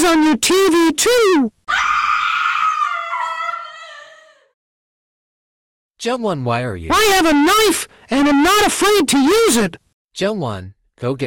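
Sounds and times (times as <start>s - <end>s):
speech: 0.0s - 1.9s, 6.0s - 11.2s
child screaming and crying in a long shrill wail: 1.7s - 4.6s.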